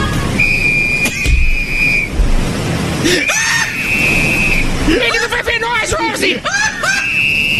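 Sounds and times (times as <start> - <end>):
constant rushing noise: 0.0 - 7.5
long steady shrill whistle blasts: 0.4 - 2.2, 3.3 - 4.7, 6.9 - 7.5.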